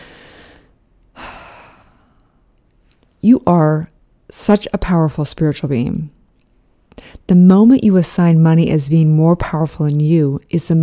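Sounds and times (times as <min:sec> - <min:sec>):
group taking a deep breath during a breathing exercise: 0:00.0 - 0:02.4
speech: 0:03.2 - 0:06.2, 0:07.0 - 0:10.8.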